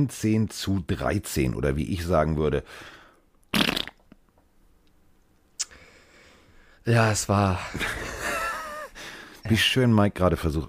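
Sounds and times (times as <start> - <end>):
speech: 0.0 - 3.0, 6.8 - 8.2, 9.5 - 10.6
raspberry blown with the lips imitating a fart: 3.5 - 4.2
laughter: 7.7 - 9.0.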